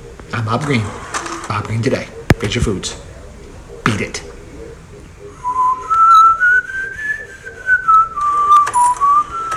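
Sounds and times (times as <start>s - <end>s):
faint noise: 0.0s - 9.5s
speech: 0.3s - 3.1s, 3.9s - 4.3s
person whistling a short smooth tune: 5.4s - 9.5s.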